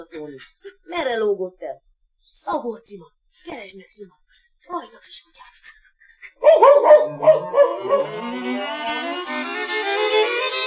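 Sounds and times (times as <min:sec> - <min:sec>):
speech: 0:00.1 - 0:05.6, 0:06.4 - 0:10.5
dog barking: 0:06.4 - 0:08.1.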